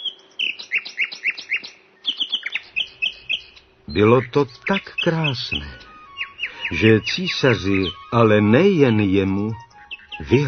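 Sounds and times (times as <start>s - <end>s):
nightingale singing: 0.0s - 10.4s
speech: 3.9s - 5.9s, 6.7s - 10.4s.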